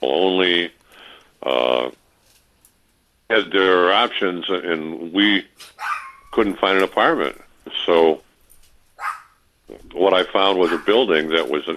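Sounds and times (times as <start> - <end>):
speech: 0.0 - 0.8, 3.4 - 5.8, 6.4 - 8.2, 10.0 - 11.7
small dog barking in short high yips: 5.6 - 6.3, 9.0 - 9.4, 10.6 - 11.0.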